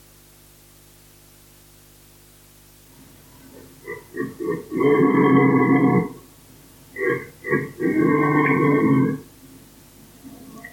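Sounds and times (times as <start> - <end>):
red deer stag giving deep guttural burping grunts: 3.6 - 6.2, 6.9 - 9.3.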